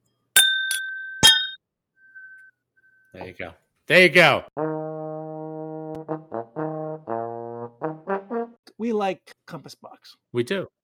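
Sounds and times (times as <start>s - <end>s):
whisky glasses clinking together in a toast: 0.4s - 2.5s
speech: 3.2s - 4.7s, 8.8s - 10.8s.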